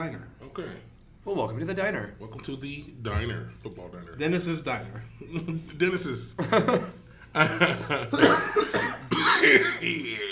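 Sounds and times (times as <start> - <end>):
speech: 0.1 - 10.3
people chuckling: 6.4 - 10.3
several people coughing into the microphone: 7.8 - 10.3.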